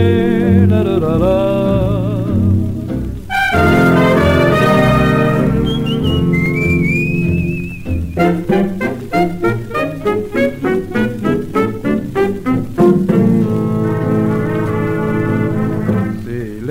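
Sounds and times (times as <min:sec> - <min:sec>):
steady music: 0:00.0 - 0:16.6
person whistling a melody: 0:05.5 - 0:08.7.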